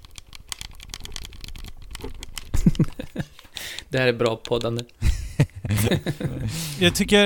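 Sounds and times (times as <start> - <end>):
Xbox One controller D-pad clicking: 0.0 - 5.1
laughter: 2.6 - 3.5, 5.0 - 7.1
speech: 3.9 - 5.0, 5.7 - 7.2.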